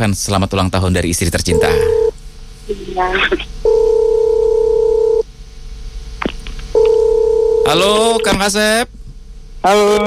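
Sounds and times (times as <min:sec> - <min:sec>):
speech: 0:00.0 - 0:02.1, 0:02.7 - 0:03.5, 0:07.7 - 0:09.0, 0:09.6 - 0:10.0
ringback tone of an outgoing telephone call: 0:01.5 - 0:02.1, 0:03.7 - 0:05.2, 0:06.8 - 0:07.8.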